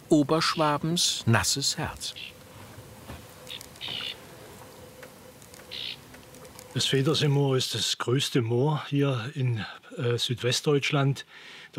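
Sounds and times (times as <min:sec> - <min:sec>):
speech: 0:00.1 - 0:02.4, 0:06.8 - 0:11.7
birds calling in reeds of a moor lake in southwestern Germany: 0:00.4 - 0:07.3.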